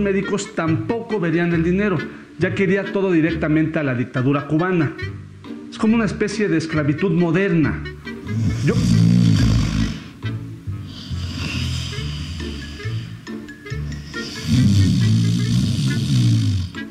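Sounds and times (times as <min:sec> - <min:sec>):
speech: 0:00.0 - 0:09.3
man snoring loudly while asleep: 0:08.2 - 0:10.2, 0:10.8 - 0:16.9.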